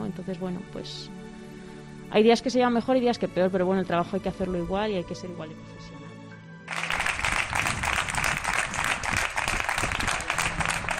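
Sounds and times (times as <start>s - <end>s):
speech: 0.1s - 1.2s, 2.1s - 6.0s
many people clapping on balconies: 6.7s - 10.9s.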